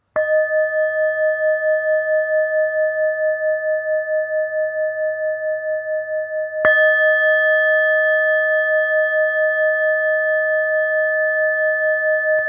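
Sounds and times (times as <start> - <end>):
Tibetan choepa singing bowl of 266 g: 0.0 - 12.4.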